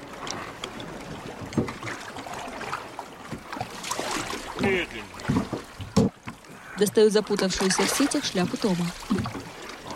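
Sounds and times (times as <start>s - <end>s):
water sloshing and splashing around a fishermen's rowboat: 0.0s - 9.9s
fishermen's rowboat knocks: 0.2s - 2.0s, 3.2s - 6.4s
speech: 4.7s - 5.1s, 6.8s - 9.3s.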